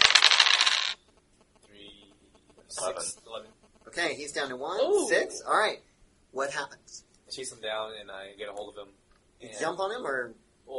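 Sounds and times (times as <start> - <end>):
four dice clattering in a tabletop game roll: 0.0 - 1.0
speech: 2.8 - 10.7.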